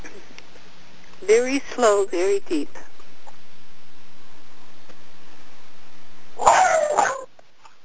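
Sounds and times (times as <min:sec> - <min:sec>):
low electrical hum: 0:00.0 - 0:07.8
speech: 0:01.2 - 0:02.9
puppy yip: 0:06.4 - 0:07.3.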